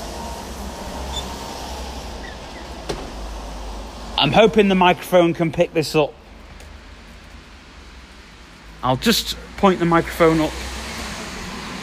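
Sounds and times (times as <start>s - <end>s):
loud steady rumble: 0.0s - 11.8s
door shutting: 1.1s - 3.5s
speech: 4.2s - 6.2s, 8.8s - 10.7s.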